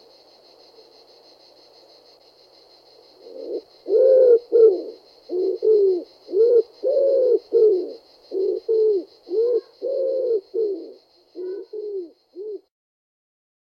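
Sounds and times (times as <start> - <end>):
Common wood pigeon cooing: 3.2 - 12.7.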